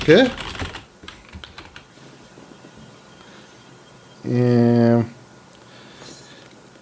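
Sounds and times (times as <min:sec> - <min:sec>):
speech: 0:00.0 - 0:00.4, 0:04.3 - 0:05.1
typing on a mechanical keyboard: 0:00.0 - 0:01.9.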